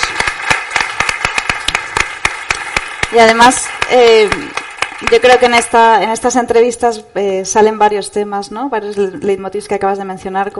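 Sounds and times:
small group clapping: 0.0s - 5.9s
speech: 3.1s - 10.5s.

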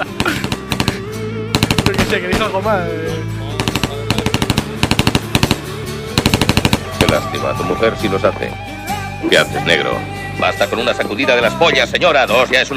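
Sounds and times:
machine gun fire in rapid bursts: 0.2s - 2.5s, 3.6s - 7.3s
speech: 2.1s - 3.4s, 7.1s - 12.7s.

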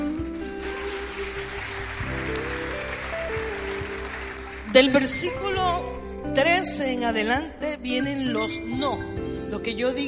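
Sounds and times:
sustained keyboard chords: 0.0s - 10.0s
audience applause: 0.3s - 5.3s
speech: 4.7s - 5.5s, 6.4s - 10.0s.

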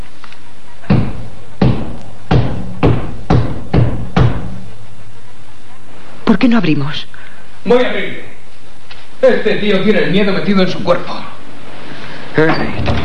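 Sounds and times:
firm knocking on a wooden door: 0.9s - 4.6s
speech: 6.3s - 8.3s, 9.2s - 11.3s, 12.4s - 13.0s.

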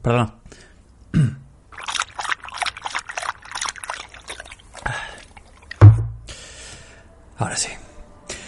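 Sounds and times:
speech: 0.0s - 1.4s, 7.6s - 7.8s
person sipping and swallowing water: 1.7s - 5.8s
water sloshing: 1.7s - 6.3s
low thump: 5.8s - 6.3s.

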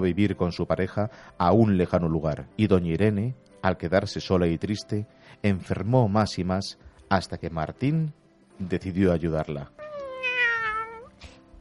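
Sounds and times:
speech: 0.0s - 9.8s
cat meowing: 9.8s - 11.1s.

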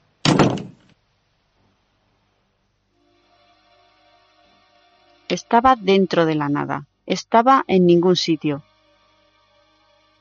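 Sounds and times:
door closing with heavy thud: 0.2s - 0.8s
speech: 5.3s - 8.7s.

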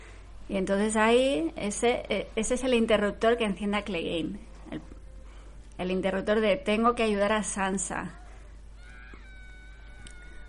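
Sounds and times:
speech: 0.5s - 4.9s, 5.8s - 8.2s
girl screaming in a film battle scene involving a giant: 8.0s - 10.4s.

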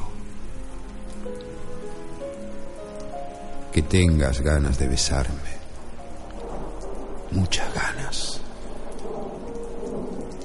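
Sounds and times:
rain pattering on a hard surface: 0.0s - 10.4s
speech: 3.7s - 5.6s, 7.3s - 8.4s.

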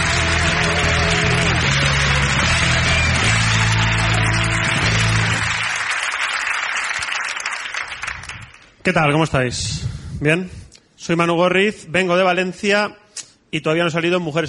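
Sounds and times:
crowd applauding to welcome a comedian: 0.0s - 8.8s
speech: 8.9s - 14.4s.

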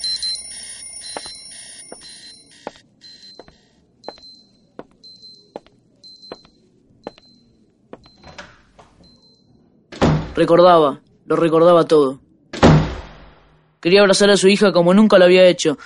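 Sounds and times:
several watches beeping an alarm: 0.0s - 9.6s
speech: 10.4s - 12.2s, 13.8s - 15.8s.

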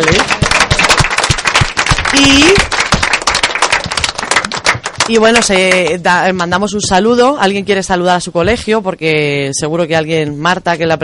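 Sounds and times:
group of people applauding: 0.0s - 6.1s
speech: 5.1s - 11.0s.

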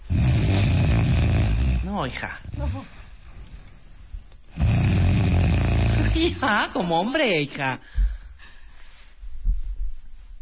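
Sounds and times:
person imitating sleep apnea snoring and snorting: 0.1s - 3.0s, 4.5s - 6.4s
speech: 2.0s - 3.0s, 6.2s - 8.1s.

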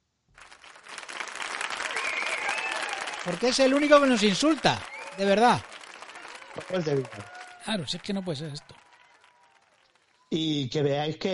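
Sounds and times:
crowd applauding: 0.4s - 10.4s
faint whistle: 1.8s - 5.4s
speech: 3.2s - 5.7s, 6.6s - 8.8s, 10.3s - 11.3s.

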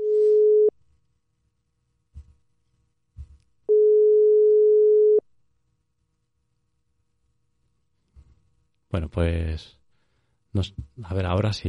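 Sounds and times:
telephone line tone while placing a call: 0.0s - 0.7s, 3.7s - 5.2s
speech: 9.0s - 9.8s, 10.5s - 11.6s.

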